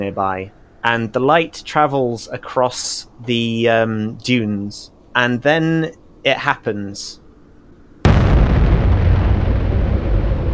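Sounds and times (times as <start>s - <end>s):
speech: 0.0s - 7.2s
massive nuclear explosion on the pyramids: 8.0s - 10.5s
deep sustained rumble of the explosion: 8.1s - 10.5s.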